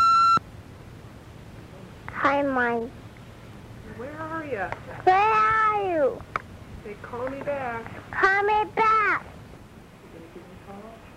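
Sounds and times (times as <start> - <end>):
electronic beep from an answering machine tape: 0.0 - 0.4
faint hiss: 0.0 - 11.1
speech: 2.3 - 3.0, 3.9 - 9.3.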